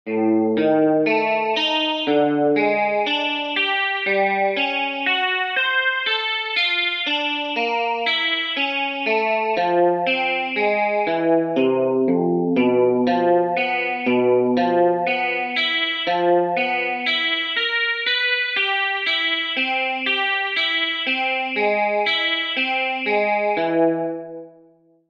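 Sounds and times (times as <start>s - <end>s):
guitar exercises at 60 bpm: 0.1s - 24.2s.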